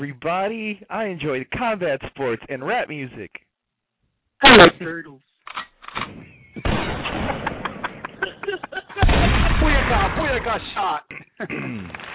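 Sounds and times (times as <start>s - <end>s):
speech: 0.0s - 3.5s, 4.4s - 7.0s, 8.2s - 12.1s
gunshot sound effects: 5.9s - 8.2s, 9.0s - 10.7s
laughter: 7.1s - 9.7s.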